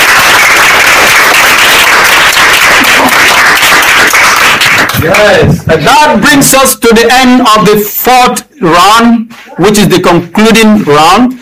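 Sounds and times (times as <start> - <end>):
crowd applause at a quiz competition: 0.0 - 5.4
speech: 5.0 - 11.4.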